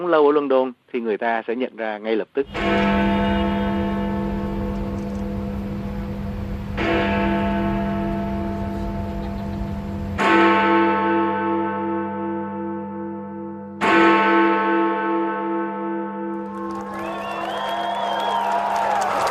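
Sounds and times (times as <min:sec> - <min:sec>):
speech: 0:00.0 - 0:03.2
deep cracked hour bell of Big Ben striking in central London: 0:02.5 - 0:16.4
crowd whooping and cheering: 0:16.4 - 0:19.2.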